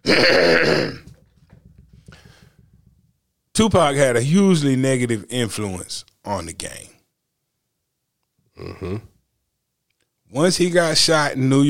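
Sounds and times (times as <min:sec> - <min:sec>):
loud raspy throat clearing: 0:00.0 - 0:01.2, 0:08.6 - 0:09.2
speech: 0:03.6 - 0:07.0, 0:08.6 - 0:09.1, 0:10.3 - 0:11.6.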